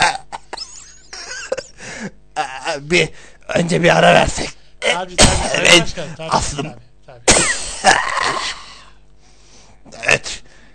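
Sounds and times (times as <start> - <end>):
harsh coughing: 0.0 - 2.2, 4.8 - 5.8, 7.2 - 9.0
speech: 2.8 - 7.3, 8.3 - 8.6.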